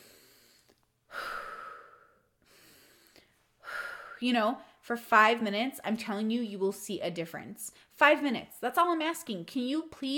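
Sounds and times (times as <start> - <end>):
deep breath: 0.0 - 4.8
speech: 4.2 - 10.1.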